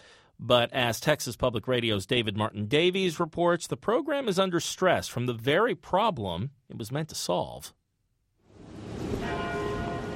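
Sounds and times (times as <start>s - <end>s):
speech: 0.4s - 7.8s
University tower bells in Austin Texas tolling: 9.0s - 10.1s.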